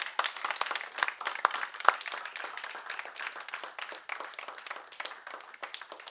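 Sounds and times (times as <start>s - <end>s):
crowd applauding: 0.0s - 6.0s.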